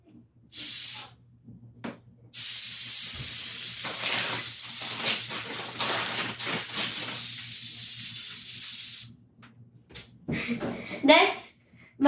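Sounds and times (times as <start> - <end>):
cooking spray hissing from an aerosol can onto a baking pan for fries: 0.6 - 1.1, 2.4 - 9.1
speech: 10.3 - 11.4.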